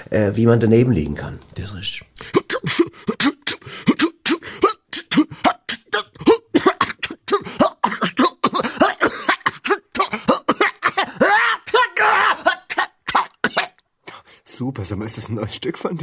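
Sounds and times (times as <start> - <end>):
speech: 0.1 - 3.3, 14.6 - 16.0
throat clearing from the flu: 2.2 - 11.1
harsh coughing from the flu: 2.2 - 13.8.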